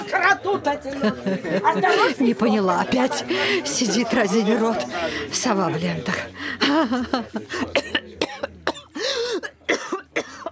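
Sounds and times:
speech: 0:00.1 - 0:08.0
laughter: 0:00.8 - 0:02.6, 0:06.4 - 0:08.2
raspy vocal gasps: 0:03.2 - 0:03.7, 0:04.9 - 0:05.4, 0:06.3 - 0:06.7, 0:09.0 - 0:09.4
woman's harsh coughing fit bringing up blood: 0:07.8 - 0:10.5.

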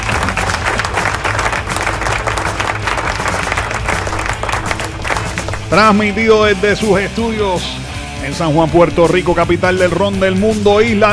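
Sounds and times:
applause sound effect played on a radio station in San Juan, Puerto Rico: 0:00.0 - 0:06.2
speech: 0:05.7 - 0:11.1.

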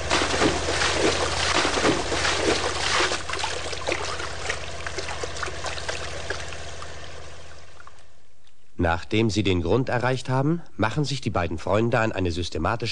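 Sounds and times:
water rushing and bubbling as divers submerge into the sea: 0:00.0 - 0:08.0
speech: 0:08.8 - 0:12.9.

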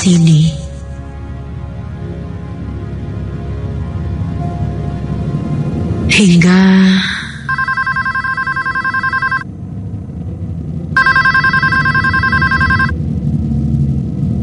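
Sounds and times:
speech: 0:00.0 - 0:00.6, 0:06.2 - 0:06.7
steady hum: 0:00.0 - 0:14.4
office telephone trilling bell ringing: 0:07.5 - 0:09.4, 0:11.0 - 0:12.9.

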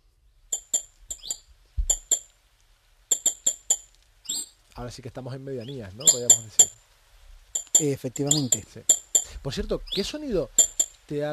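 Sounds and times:
European robin ticking calls: 0:00.5 - 0:02.4, 0:03.1 - 0:04.6, 0:05.6 - 0:06.9, 0:07.5 - 0:11.3
speech: 0:04.8 - 0:06.8, 0:07.8 - 0:11.3.

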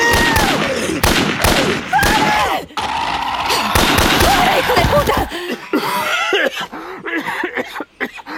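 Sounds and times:
rifle shots: 0:00.1 - 0:02.4, 0:03.7 - 0:05.1
laughter: 0:04.2 - 0:07.9.

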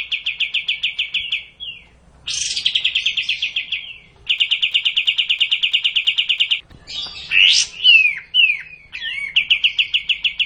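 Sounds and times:
cililin trilling in kapas tembak style: 0:00.0 - 0:10.4.

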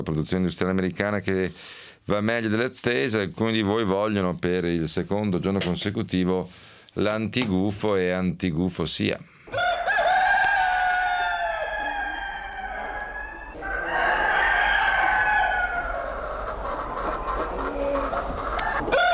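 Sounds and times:
speech: 0:00.0 - 0:09.6
roosters crowing: 0:09.5 - 0:19.1.

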